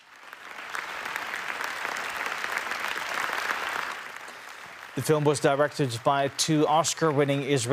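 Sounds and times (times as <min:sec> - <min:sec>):
sustained applause from a large audience: 0:00.0 - 0:07.7
speech: 0:05.0 - 0:07.7.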